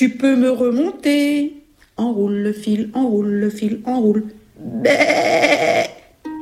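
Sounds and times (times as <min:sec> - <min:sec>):
speech: 0:00.0 - 0:06.0
goat bleating in a stable: 0:04.6 - 0:06.1.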